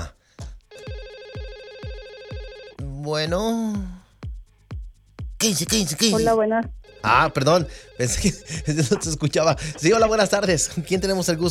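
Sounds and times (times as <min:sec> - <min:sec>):
telephone ringing with an incoming call: 0:00.7 - 0:02.8, 0:06.2 - 0:10.7
speech: 0:03.0 - 0:04.0, 0:05.4 - 0:11.5
laughter: 0:08.0 - 0:11.5.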